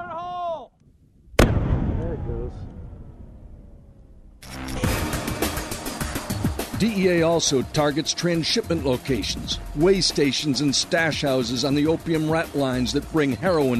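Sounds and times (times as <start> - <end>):
explosion blowing up a drug lab and processing equipment: 1.3 - 5.5
speech: 6.8 - 13.7.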